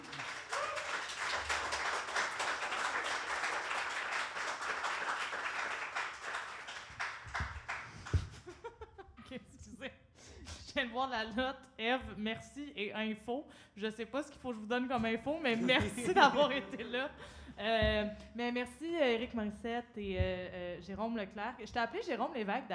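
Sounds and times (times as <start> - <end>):
audience applauding its guests: 0.0 - 8.6
light laughter: 8.2 - 9.5
speech: 11.0 - 22.7.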